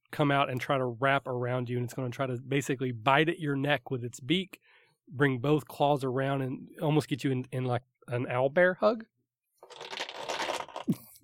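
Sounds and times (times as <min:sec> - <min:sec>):
speech: 0:00.1 - 0:09.1
many dice tumbling and rattling across a surface: 0:09.6 - 0:10.9.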